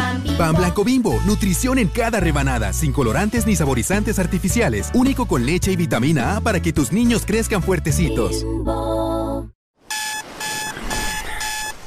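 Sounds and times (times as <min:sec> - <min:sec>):
speech: 0:00.4 - 0:08.9
alarm clock buzzing and beeping: 0:09.9 - 0:11.8.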